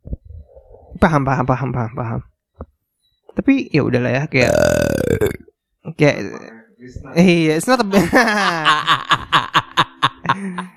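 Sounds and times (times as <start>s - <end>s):
speech: 1.0s - 2.3s, 3.4s - 5.4s, 6.0s - 9.2s
loud burp with a low rumbling resonant tone: 4.4s - 5.5s
laughter: 7.9s - 10.7s.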